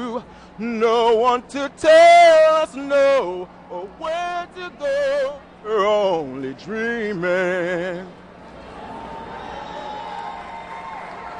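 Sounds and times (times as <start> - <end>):
speech: 0.2 - 8.2
large crowd cheering for a singer: 8.4 - 11.3.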